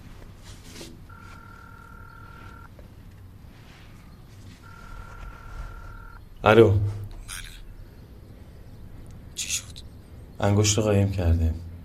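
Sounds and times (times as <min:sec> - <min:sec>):
mobile phone dialing tone: 0:01.1 - 0:02.8, 0:04.6 - 0:06.2
low rumbling background: 0:01.4 - 0:11.8
speech: 0:06.4 - 0:07.0, 0:10.4 - 0:11.7.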